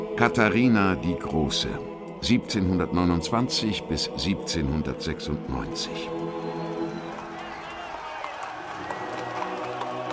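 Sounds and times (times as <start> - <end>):
speech: 0.2 - 6.2
crowd cheering in Moscow: 6.1 - 10.1.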